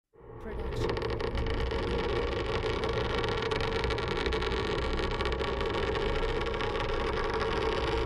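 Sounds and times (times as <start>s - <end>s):
horror scrape: 0.2s - 7.9s.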